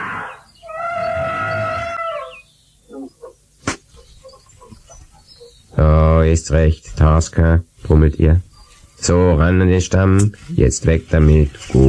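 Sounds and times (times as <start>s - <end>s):
elephant trumpeting: 0.0s - 5.7s
sharp crack: 3.6s - 4.0s
speech: 6.3s - 11.8s.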